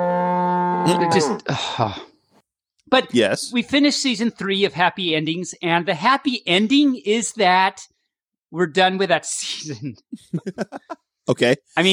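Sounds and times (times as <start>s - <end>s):
cow mooing: 0.0s - 1.5s
speech: 0.8s - 2.1s, 2.9s - 7.9s, 8.5s - 11.9s
laughter: 9.8s - 11.1s.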